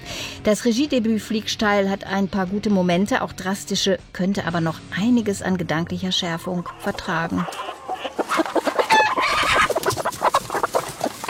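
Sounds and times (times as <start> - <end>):
speech: 0.4 - 7.7
hen clucking and squawking: 6.0 - 11.2.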